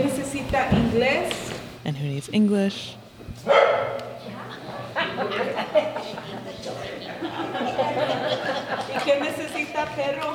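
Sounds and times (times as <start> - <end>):
murmur of people talking at a residents' meeting: 0.0 - 10.3
speech: 0.5 - 4.0, 5.2 - 10.3
stray dog barking and yipping in a church: 3.5 - 4.0
people chuckling: 4.7 - 9.6.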